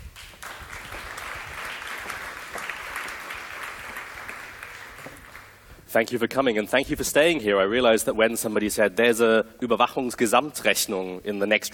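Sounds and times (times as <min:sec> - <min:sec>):
audience applauding with many hands clapping: 0:00.0 - 0:05.7
speech: 0:05.9 - 0:11.7.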